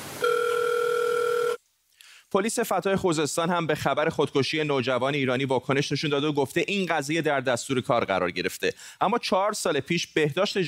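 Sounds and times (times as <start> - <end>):
video call ringing tone: 0.2 - 1.6
speech: 2.3 - 10.6.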